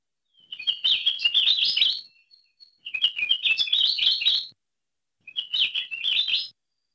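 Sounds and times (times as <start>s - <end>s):
ʻAkiapōlāʻau honeycreeper song of rapid high warbling chirps: 0.3s - 4.5s, 5.3s - 6.5s.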